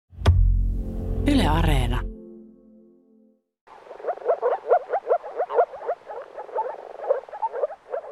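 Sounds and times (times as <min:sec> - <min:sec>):
speech: 0:01.2 - 0:02.1
frogs croaking: 0:03.7 - 0:08.0.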